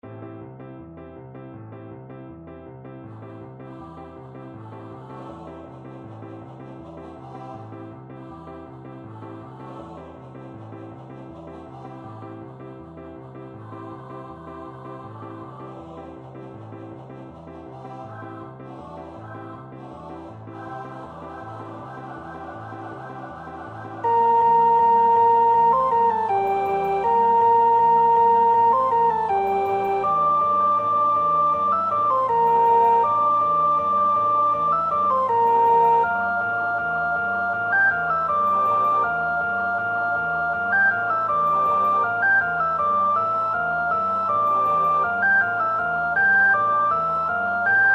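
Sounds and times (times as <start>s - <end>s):
choir first soprano voice singing: 3.1s - 47.9s.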